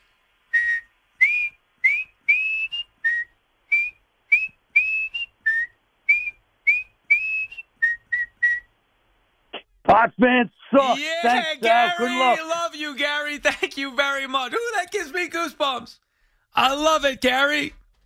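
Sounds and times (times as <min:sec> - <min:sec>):
person whistling a lively tune: 0:00.6 - 0:08.7
speech: 0:10.0 - 0:16.0, 0:16.6 - 0:17.8.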